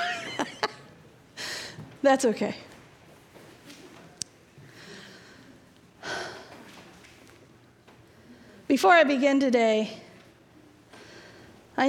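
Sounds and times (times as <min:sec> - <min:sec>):
speech: 0:02.0 - 0:02.7, 0:08.8 - 0:10.0
heavy out-of-breath breathing: 0:04.6 - 0:06.8, 0:10.9 - 0:11.7.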